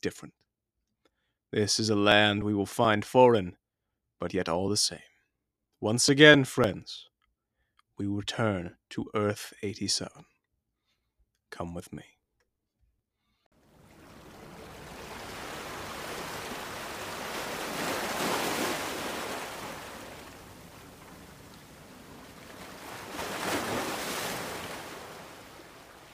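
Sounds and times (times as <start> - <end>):
speech: 0.0 - 0.4, 1.5 - 3.6, 4.2 - 5.1, 5.8 - 7.1, 8.0 - 10.3, 11.5 - 12.2
water lapping at a boat dock: 13.6 - 26.1.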